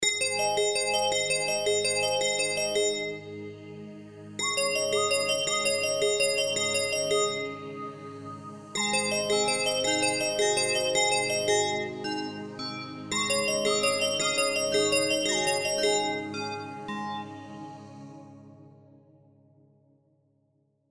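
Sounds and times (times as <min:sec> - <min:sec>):
bell ringtone: 0:00.0 - 0:03.4, 0:04.4 - 0:08.2, 0:08.8 - 0:17.7.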